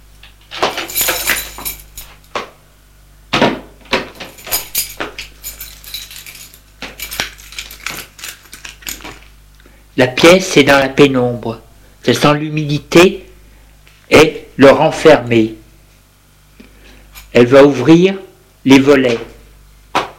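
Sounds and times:
keys jingling and scraping in a lock: 0.4s - 2.4s, 4.0s - 9.4s, 17.1s - 17.4s
speech: 10.0s - 13.2s, 14.2s - 15.6s, 17.3s - 19.3s.

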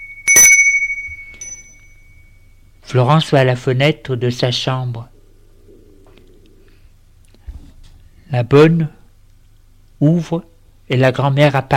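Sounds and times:
bell ringing at a gate: 0.0s - 2.7s
speech: 2.9s - 5.1s, 8.3s - 9.0s, 10.0s - 11.7s.

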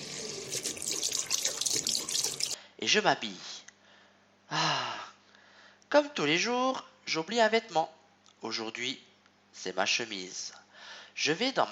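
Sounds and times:
shower water running while someone washes: 0.0s - 2.6s
speech: 2.8s - 3.5s, 5.9s - 10.6s, 11.2s - 11.7s.

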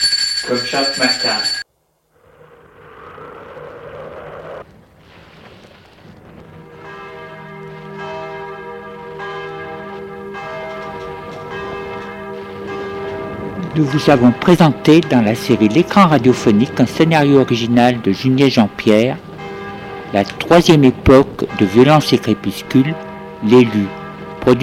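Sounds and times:
bell rung at a front entrance: 0.0s - 1.6s, 6.8s - 24.6s
speech: 0.5s - 1.6s, 13.8s - 19.3s, 20.1s - 24.6s.

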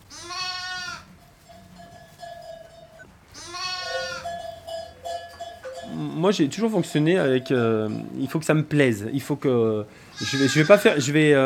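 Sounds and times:
sheep and lambs bleating: 0.0s - 1.1s, 3.3s - 4.4s, 10.0s - 11.4s
speech: 6.2s - 11.4s.

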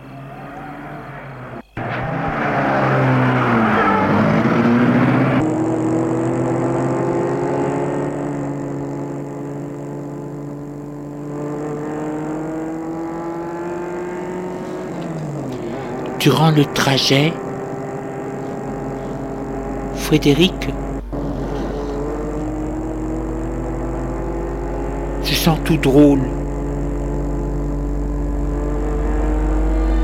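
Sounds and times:
car engine cranking and catching: 0.0s - 30.0s
speech: 16.2s - 17.5s, 20.1s - 20.8s, 25.4s - 26.4s.

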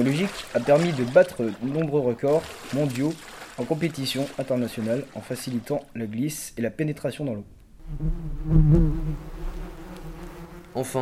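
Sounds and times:
speech: 0.0s - 9.6s, 10.8s - 10.9s
bees buzzing: 7.8s - 10.9s.

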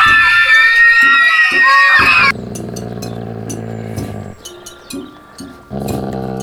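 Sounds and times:
girls shouting and shrieking at school: 0.0s - 2.3s.

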